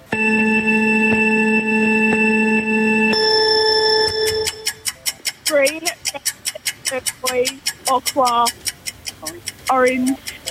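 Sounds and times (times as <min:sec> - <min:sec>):
electronic countdown buzzer tone: 0:00.0 - 0:04.9
short bright beeps: 0:00.0 - 0:05.0
faint ticks: 0:04.0 - 0:10.4
speech: 0:08.0 - 0:08.6, 0:09.7 - 0:10.3.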